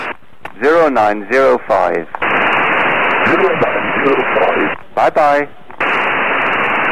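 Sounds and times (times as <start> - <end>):
long wash of hissing radio static: 0.0 - 6.9
band-limited radio transmission of a voice with delayed moon-bounce echo: 0.6 - 2.1, 3.2 - 5.6
speech: 0.8 - 2.3, 3.3 - 5.6.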